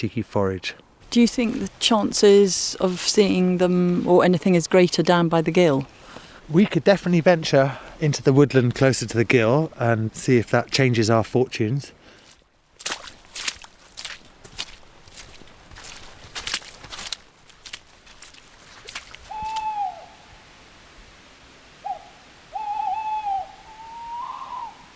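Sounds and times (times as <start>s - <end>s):
speech: 0.0s - 12.0s
crunching footsteps: 10.7s - 11.4s, 12.0s - 19.7s
tawny owls calling on a slope across a gill: 19.2s - 20.3s, 21.8s - 24.9s.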